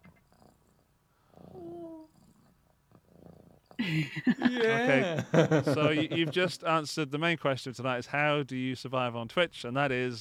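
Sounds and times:
cat purring: 0.0 - 3.8
laughter: 3.8 - 6.7
speech: 3.8 - 10.1.

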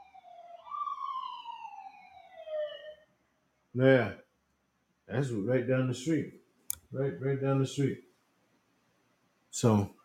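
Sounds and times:
ambulance siren passing down the street: 0.0 - 3.1
speech: 3.7 - 4.2, 5.1 - 8.1, 9.5 - 10.0.

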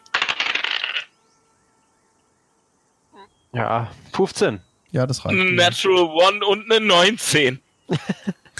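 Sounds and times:
dice rattling and tumbling across a hard table in a tabletop game: 0.0 - 1.1
brief faint tone: 1.2 - 7.8
speech: 3.5 - 8.4
laughter: 7.9 - 8.5.

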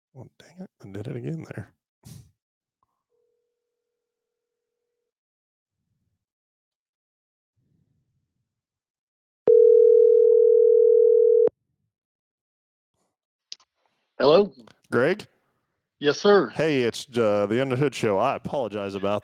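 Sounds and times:
speech: 0.2 - 2.2, 14.2 - 15.3, 16.0 - 19.2
telephone dial tone while calling back: 9.5 - 11.5.

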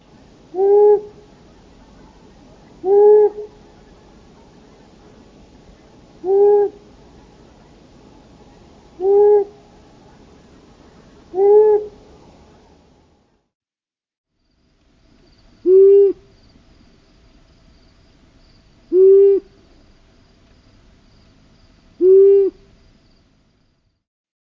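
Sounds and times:
faint insect hum: 0.0 - 13.3, 14.4 - 24.0
long-eared owl hooting: 0.1 - 12.7, 15.6 - 16.3, 18.9 - 19.6, 22.0 - 22.7.

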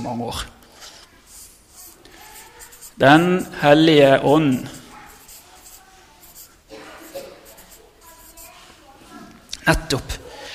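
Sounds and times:
speech: 0.0 - 0.6, 3.0 - 4.8, 9.6 - 10.2
scratchy squeaky strokes of writing on a board: 0.7 - 8.8.

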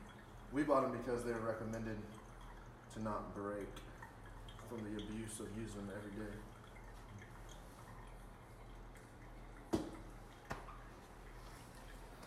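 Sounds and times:
drips landing: 0.0 - 12.2
speech: 0.5 - 2.2, 2.9 - 3.9, 4.6 - 6.5.

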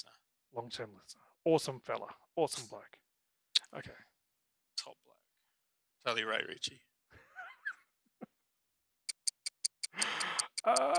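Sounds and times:
speech: 0.0 - 3.0, 3.7 - 4.1, 6.0 - 6.9, 10.0 - 10.9
clock ticking: 9.1 - 10.9.

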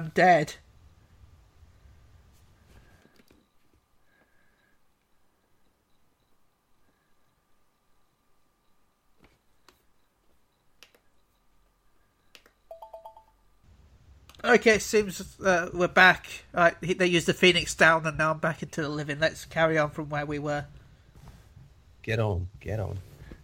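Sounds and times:
speech: 0.0 - 0.6, 14.4 - 20.8, 22.0 - 23.1
faint steady hum: 0.0 - 23.4
soft scattered clicks: 10.8 - 11.2, 12.3 - 12.6.

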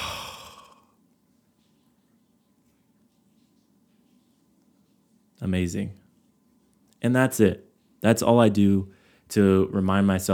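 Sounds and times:
exhaling through the mouth ending a breathing exercise: 0.0 - 0.8
speech: 5.4 - 6.0, 7.0 - 10.3.

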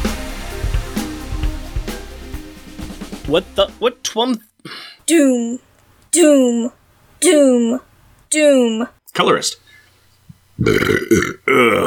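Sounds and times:
speech: 3.3 - 9.6, 10.6 - 11.8
loud croaky burp: 10.6 - 11.8.

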